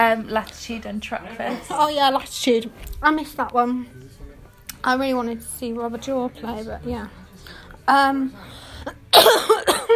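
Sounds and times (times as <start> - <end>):
speech: 0.0 - 4.2, 4.8 - 9.5
harsh rough breathy coughs: 9.1 - 9.9.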